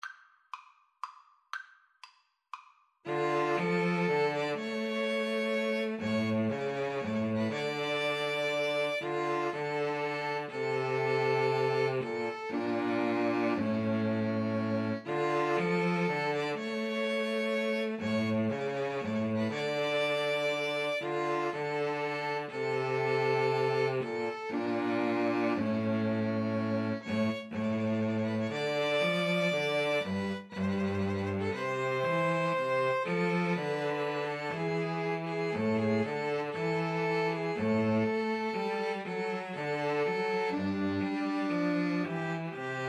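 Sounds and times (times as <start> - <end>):
pastorale played on two violins and cello: 3.1 - 42.8.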